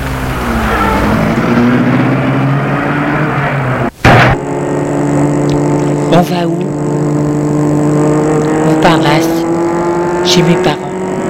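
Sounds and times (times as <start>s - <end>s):
car engine running: 0.0s - 11.2s
sharp thump: 4.0s - 4.4s
speech: 6.2s - 6.8s, 10.3s - 10.8s.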